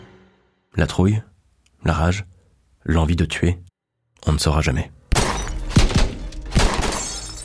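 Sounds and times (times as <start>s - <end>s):
speech: 0.8s - 5.0s
bullets striking the bodywork of a Ford car: 5.1s - 7.4s
car windshield glass shattering from bullets: 5.1s - 7.4s.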